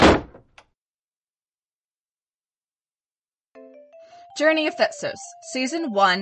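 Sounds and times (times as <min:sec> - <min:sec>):
door slamming shut: 0:00.0 - 0:00.5
speech: 0:04.4 - 0:06.2.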